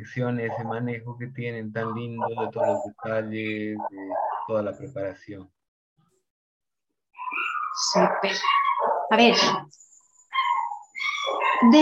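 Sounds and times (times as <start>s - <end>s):
speech: 0.0s - 5.6s, 7.8s - 9.8s, 11.6s - 11.8s
dogs barking and yelping: 0.3s - 0.9s, 1.8s - 4.8s, 7.1s - 11.8s
dog drawn-out whining bark: 1.8s - 2.9s, 3.9s - 4.6s, 7.2s - 9.4s, 10.3s - 11.8s.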